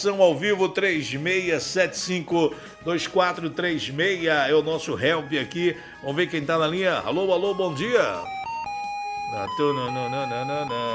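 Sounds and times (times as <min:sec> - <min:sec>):
speech: 0:00.0 - 0:08.4, 0:09.3 - 0:10.9
short electronic jingle over a caller's phone line: 0:06.2 - 0:10.9.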